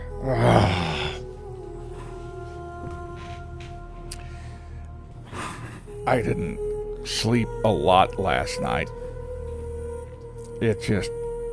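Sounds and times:
drawn-out human yawn: 0.0s - 1.2s
speech: 0.2s - 0.9s, 6.1s - 9.0s, 10.6s - 11.2s.

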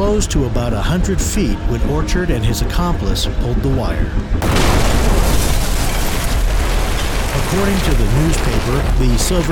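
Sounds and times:
speech: 0.1s - 5.1s, 7.4s - 9.4s
loud deep explosion rumbling: 4.4s - 9.4s.

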